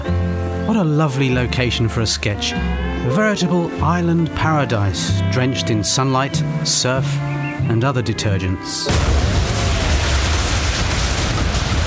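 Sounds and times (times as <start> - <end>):
speech: 0.7 - 9.5
explosion sound effect with deep boom and crackling debris: 8.9 - 11.8.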